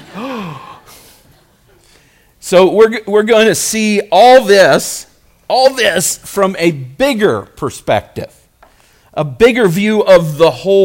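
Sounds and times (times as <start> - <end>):
church audience gasping: 0.0 - 2.3
speech: 2.5 - 8.4, 9.2 - 10.8.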